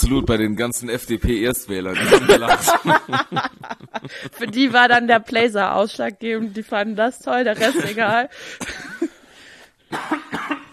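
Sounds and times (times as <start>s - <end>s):
speech: 0.0s - 9.2s, 9.9s - 10.6s
laughter: 2.7s - 10.6s
person coughing: 8.6s - 9.2s, 9.9s - 10.7s.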